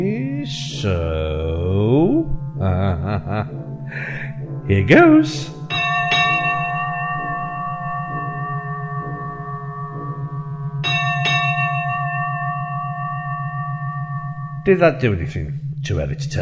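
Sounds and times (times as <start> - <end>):
speech: 0.0 - 4.1, 4.7 - 5.5, 14.6 - 16.4
steady low hum: 0.0 - 16.4
laughter: 2.6 - 4.3
bell ringing: 4.7 - 15.2.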